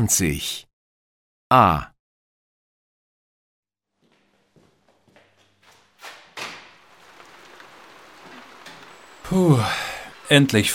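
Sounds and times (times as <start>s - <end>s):
speech: 0.0s - 0.7s, 1.5s - 1.9s, 9.3s - 10.7s
footsteps: 3.9s - 10.7s
steady rain falling: 4.9s - 10.7s.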